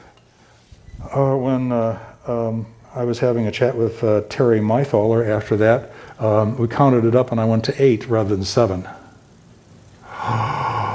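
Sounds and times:
speech: 0:01.2 - 0:09.0
dramatic gasp with a slight voiced edge: 0:10.0 - 0:10.9.

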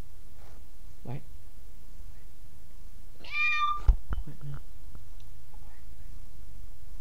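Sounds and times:
hiss: 0:00.0 - 0:06.9
cat meowing into a microphone: 0:03.2 - 0:03.9.

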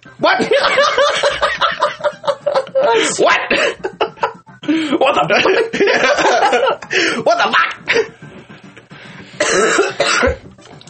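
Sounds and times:
speech: 0:00.1 - 0:00.8
laughter: 0:00.4 - 0:04.4, 0:05.1 - 0:07.7
harsh coughs: 0:09.4 - 0:10.4.

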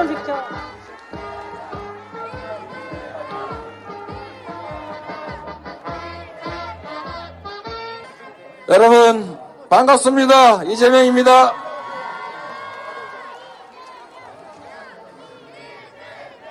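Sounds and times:
large crowd applauding and cheering: 0:00.0 - 0:07.4, 0:11.5 - 0:14.9
upbeat music with a steady pounding beat: 0:00.0 - 0:07.9
speech: 0:08.7 - 0:11.6.

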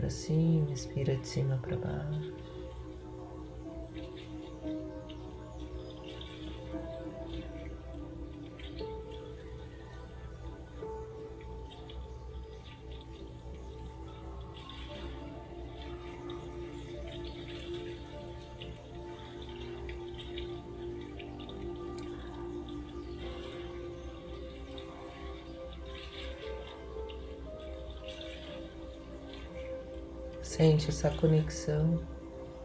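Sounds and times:
faint bird chirps: 0:00.0 - 0:32.6
running water murmuring: 0:00.0 - 0:32.6
speech: 0:00.1 - 0:02.5, 0:31.0 - 0:32.1.

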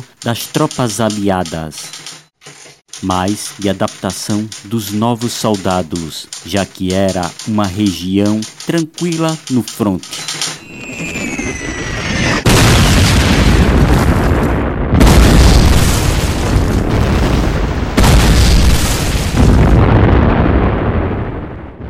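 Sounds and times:
speech: 0:00.2 - 0:02.0, 0:03.0 - 0:10.2
German artillery barrage firing in the Ardennes Forest: 0:12.4 - 0:21.8.

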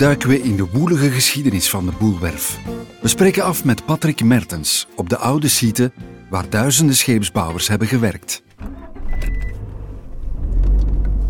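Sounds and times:
speech: 0:00.0 - 0:08.7
car engine rumble driving slowly around a statue on an old shipyard site: 0:08.6 - 0:11.2.

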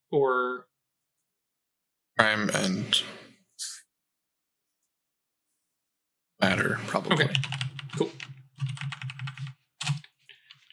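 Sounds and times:
speech: 0:00.1 - 0:00.7, 0:02.2 - 0:03.2, 0:06.4 - 0:08.2
typing notes on a computer keyboard: 0:07.2 - 0:10.7.

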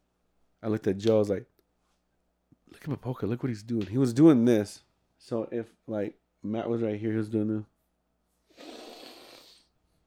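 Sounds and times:
speech: 0:00.6 - 0:01.5, 0:02.7 - 0:07.7
person imitating sniffing with a loud breathy nasal inhale: 0:08.5 - 0:09.7.

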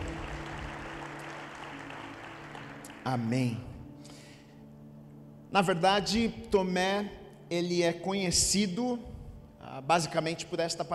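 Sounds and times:
church audience applauding: 0:00.0 - 0:03.3
speech: 0:03.1 - 0:03.7, 0:05.5 - 0:09.1, 0:09.8 - 0:10.9.

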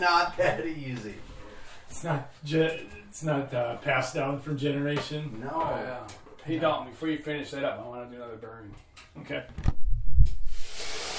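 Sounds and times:
speech: 0:00.0 - 0:01.3, 0:01.9 - 0:09.8
steam hissing from hot sauna rocks: 0:10.4 - 0:11.1
water poured onto hot sauna rocks: 0:10.5 - 0:11.1.

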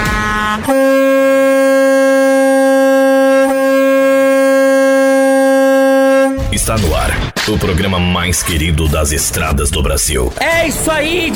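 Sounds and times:
loud blaring air horn: 0:00.0 - 0:06.6
speech: 0:00.6 - 0:01.1, 0:06.6 - 0:11.3.

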